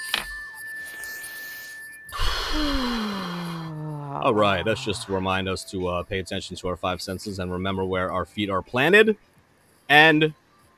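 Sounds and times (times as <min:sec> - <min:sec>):
deep mindfulness breath: 0:01.2 - 0:04.9
speech: 0:04.2 - 0:09.3, 0:09.9 - 0:10.4.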